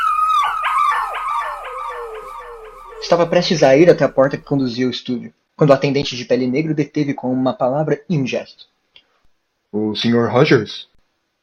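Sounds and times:
dog howling frantically inside a museum: 0.0s - 3.3s
speech: 3.0s - 8.7s, 9.7s - 10.9s.

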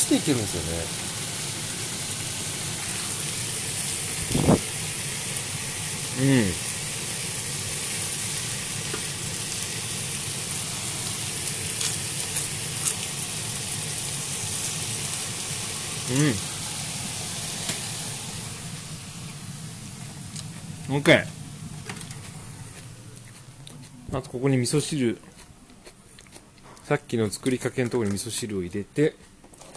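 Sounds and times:
chicken, shimeji mushrooms and cabbage sizzling in chicken fat in a frying pan: 0.0s - 20.8s
speech: 0.1s - 1.1s, 6.2s - 6.7s, 21.0s - 21.4s, 24.2s - 25.4s, 26.9s - 29.3s.

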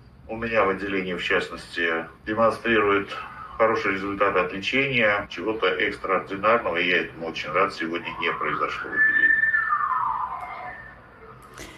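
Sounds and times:
speech: 0.3s - 9.4s
ambulance siren wailing outside a window: 2.8s - 4.5s, 6.6s - 11.4s.

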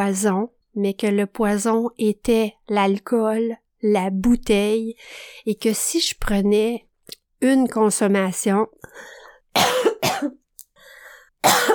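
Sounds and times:
speech: 0.0s - 10.4s
person with allergies coughing: 9.6s - 10.4s, 11.4s - 11.7s.

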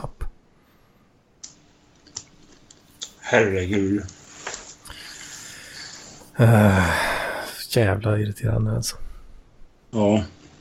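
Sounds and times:
quiet hum: 0.0s - 10.5s
computer mouse being right-clicked: 1.4s - 3.2s
speech: 3.3s - 4.2s, 6.4s - 7.0s, 7.7s - 9.0s, 9.9s - 10.4s.

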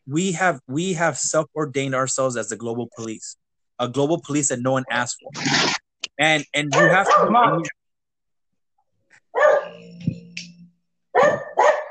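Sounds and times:
speech: 0.1s - 7.8s
dog barking: 6.7s - 7.6s, 9.3s - 9.8s, 11.1s - 11.9s.

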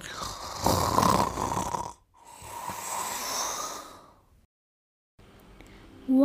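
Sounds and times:
man snoring while asleep: 0.0s - 4.2s
speech: 6.1s - 6.2s.

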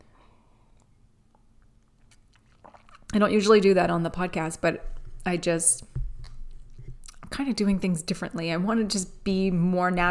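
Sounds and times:
low hum: 0.0s - 10.0s
soft slurping mouth sounds: 1.9s - 3.2s
sipping hot drink from a mug: 1.9s - 3.3s
speech: 3.1s - 5.9s, 7.3s - 10.0s.

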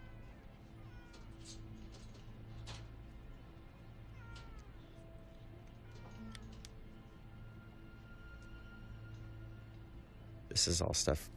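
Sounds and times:
cat meowing: 0.0s - 1.6s, 4.1s - 6.7s
low hum: 0.0s - 11.3s
speech: 10.6s - 11.3s.

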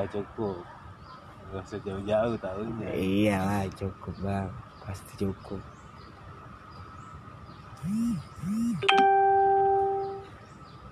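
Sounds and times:
speech: 0.0s - 0.8s, 1.5s - 5.8s, 7.8s - 9.2s
bright phone notification chime: 8.8s - 10.2s.

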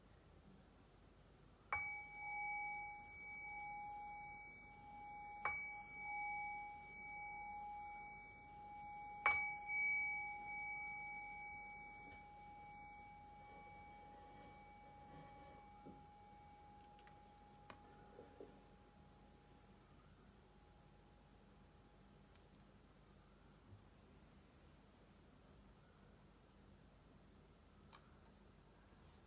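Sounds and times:
meditation bell struck with a clear sustained tone: 1.7s - 19.5s.

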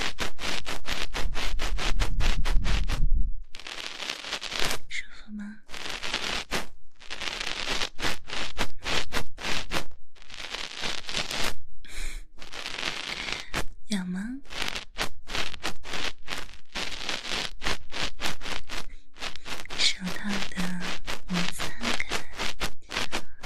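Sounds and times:
dry rubbing and scratching of nylon stockings and gloves in a massage: 0.0s - 5.0s, 5.6s - 11.6s, 12.2s - 23.4s
deep rumble: 2.0s - 3.5s.

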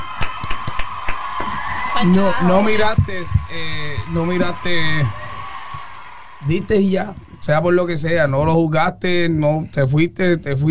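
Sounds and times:
few people clapping: 0.0s - 7.4s
speech: 2.0s - 5.2s, 6.4s - 10.6s.

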